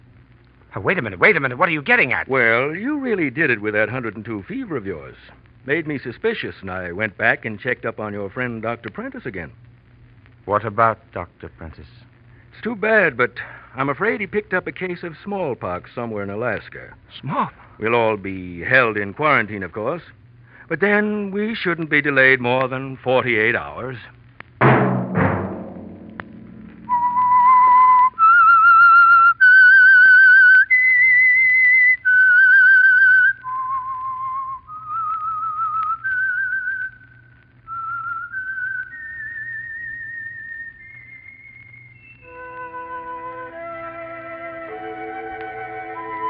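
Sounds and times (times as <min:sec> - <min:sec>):
speech: 0:00.7 - 0:09.7, 0:10.4 - 0:12.0, 0:12.6 - 0:24.2
orchestral music: 0:25.2 - 0:28.0, 0:42.3 - 0:46.2
whistled melody: 0:26.9 - 0:37.0, 0:37.7 - 0:46.2.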